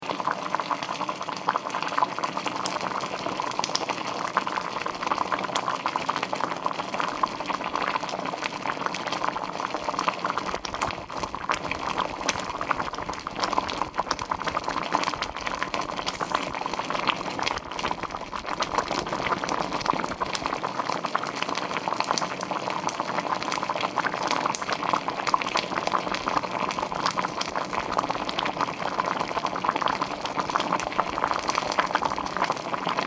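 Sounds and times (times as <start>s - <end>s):
red beans boiling: 0.0s - 33.0s.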